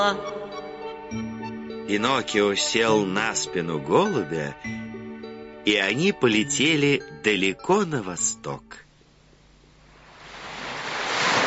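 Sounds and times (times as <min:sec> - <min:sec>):
speech: 0:00.0 - 0:00.4, 0:01.9 - 0:04.8, 0:05.6 - 0:08.8
rough waves on the open sea: 0:10.0 - 0:11.4.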